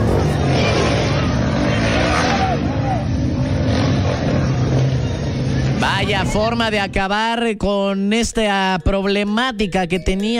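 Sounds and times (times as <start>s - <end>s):
motorcycle engine roar with throttle blips: 0.0s - 7.0s
speech: 6.2s - 10.3s.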